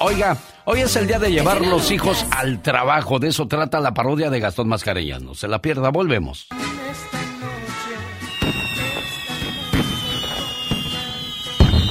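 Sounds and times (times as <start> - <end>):
music: 0.0 - 3.3, 6.5 - 11.9
speech: 0.0 - 7.2
fireworks rocket whistle: 6.6 - 11.9
sharp fireworks bangs: 8.2 - 11.9.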